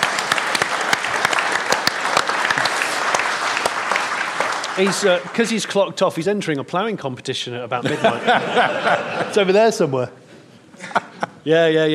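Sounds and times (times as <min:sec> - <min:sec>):
crowd clapping: 0:00.0 - 0:06.2
speech: 0:04.8 - 0:10.2, 0:10.9 - 0:11.9
laughter: 0:07.8 - 0:10.0, 0:10.7 - 0:11.5.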